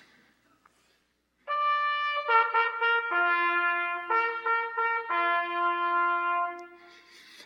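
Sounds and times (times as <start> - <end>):
trumpet blast: 1.4 - 7.1.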